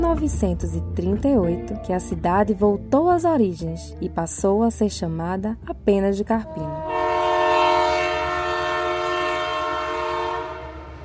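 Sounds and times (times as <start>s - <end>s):
speech: 0.1s - 6.9s
train rumbling along the tracks: 6.4s - 11.0s.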